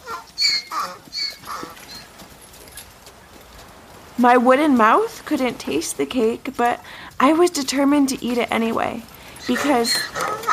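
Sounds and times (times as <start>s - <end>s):
donkey hooves clip-clopping on a hard road: 0.0s - 10.5s
speech: 4.2s - 10.5s.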